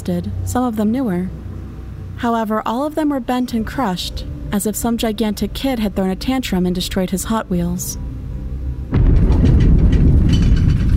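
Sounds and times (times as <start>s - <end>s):
speech: 0.1s - 1.5s, 2.2s - 8.0s
loud deep thunder rumbling: 8.8s - 10.9s.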